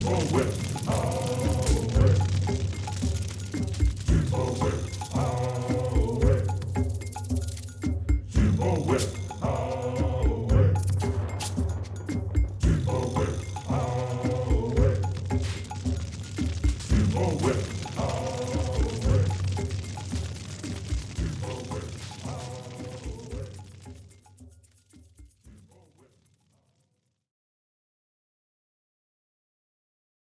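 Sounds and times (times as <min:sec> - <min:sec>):
voodoo chant: 0:00.0 - 0:24.3.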